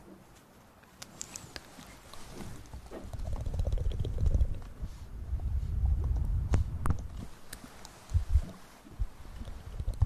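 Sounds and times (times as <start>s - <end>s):
ear massage soft rubbing and rustling: 0.0s - 10.0s.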